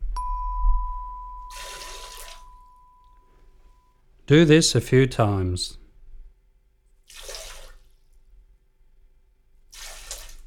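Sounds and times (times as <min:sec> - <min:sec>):
water squirted from the mouth by squeezing cheek muscles and tongue: 0:01.4 - 0:02.7, 0:07.0 - 0:08.1, 0:09.7 - 0:10.4
speech: 0:04.3 - 0:05.8.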